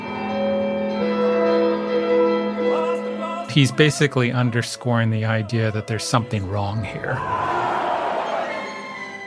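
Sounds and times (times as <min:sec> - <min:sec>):
orchestra playing thick sustained dissonant chords: 0:00.0 - 0:09.2
speech: 0:03.6 - 0:07.6.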